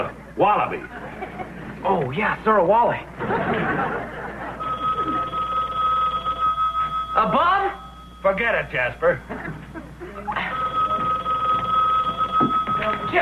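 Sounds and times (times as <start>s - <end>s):
speech: 0.0s - 4.4s, 7.2s - 10.6s, 12.8s - 13.1s
low hum: 0.0s - 13.1s
laughter: 0.7s - 1.9s, 3.0s - 5.7s, 9.2s - 11.2s
telephone bell ringing: 4.3s - 9.4s, 10.3s - 13.1s.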